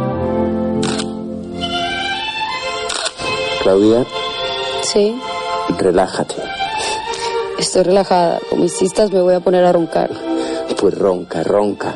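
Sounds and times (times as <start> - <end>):
steady harmonic music bed: 0.0 - 11.9
single-lens reflex camera shutter clicks during a photo shoot: 0.8 - 1.2, 2.8 - 3.2
speech: 3.6 - 4.2, 4.9 - 6.6, 7.6 - 11.9.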